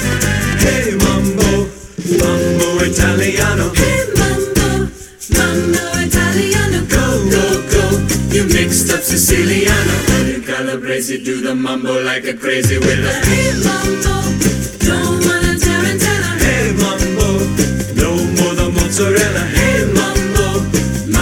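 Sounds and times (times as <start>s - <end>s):
SATB four-part choir singing: 0.2s - 21.1s.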